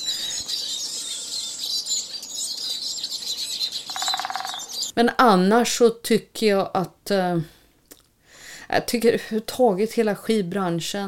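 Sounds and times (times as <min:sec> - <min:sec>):
dense chorus of birds chirping and singing: 0:00.0 - 0:05.0
speech: 0:05.0 - 0:07.6, 0:08.7 - 0:11.0.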